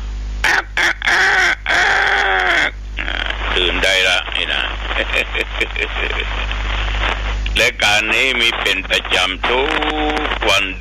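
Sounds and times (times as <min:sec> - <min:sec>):
rooster crowing: 0:00.4 - 0:02.8
speech: 0:03.6 - 0:04.3, 0:05.0 - 0:10.7
laughter: 0:04.8 - 0:06.6.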